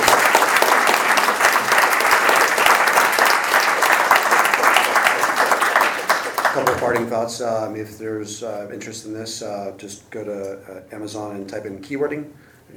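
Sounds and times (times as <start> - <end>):
audience applause for the speakers: 0.0 - 7.1
speech: 6.6 - 12.7.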